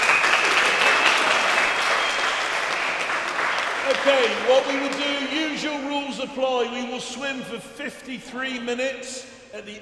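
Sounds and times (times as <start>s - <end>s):
crowd clapping and applauding: 0.0s - 5.8s
speech: 4.0s - 9.8s.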